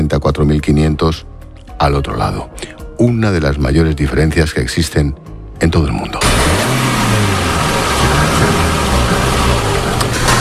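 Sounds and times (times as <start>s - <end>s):
speech: 0.1s - 7.2s
broad road noise: 6.2s - 10.4s
car engine humming with a low droning rumble: 6.2s - 10.4s.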